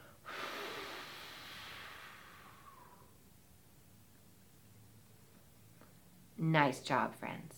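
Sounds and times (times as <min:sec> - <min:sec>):
deep breath in through nose, out through mouth: 0:00.0 - 0:03.2
speech: 0:06.5 - 0:07.5.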